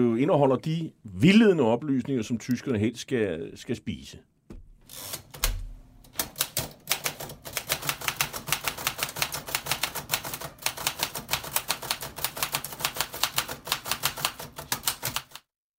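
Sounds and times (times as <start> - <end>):
speech: 0.0 - 4.3
low thud: 4.5 - 4.8
1940s typewriter keys clacking: 4.9 - 15.5.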